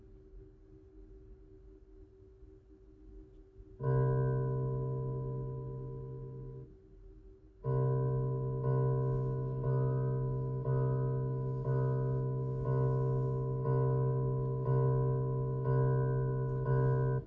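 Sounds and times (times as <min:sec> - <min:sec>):
pure sine tone at 65.4 Hz: 0:03.8 - 0:06.7, 0:07.6 - 0:17.2.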